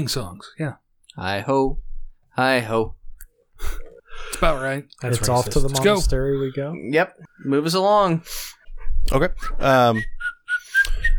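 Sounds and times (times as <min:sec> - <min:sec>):
speech: 0:00.0 - 0:03.0, 0:03.6 - 0:10.2
person whistling short high notes: 0:09.4 - 0:11.1.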